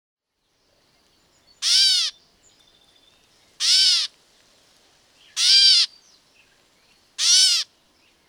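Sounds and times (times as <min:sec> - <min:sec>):
catbird giving cat-like mews: 0:01.6 - 0:02.2, 0:03.6 - 0:04.1, 0:05.4 - 0:05.9, 0:07.2 - 0:07.7.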